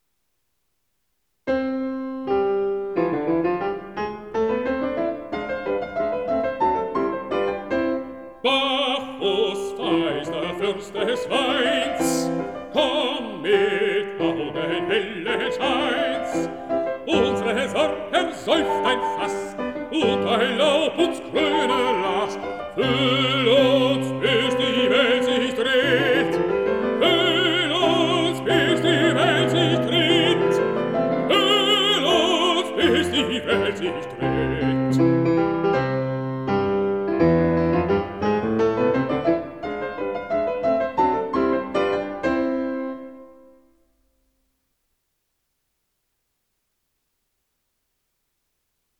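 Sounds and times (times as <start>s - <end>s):
piano: 1.4s - 44.5s
person singing: 8.4s - 35.3s.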